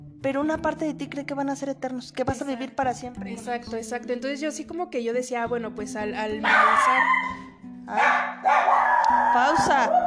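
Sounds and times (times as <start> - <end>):
speech: 0.2 - 10.0
dog barking: 6.4 - 10.0.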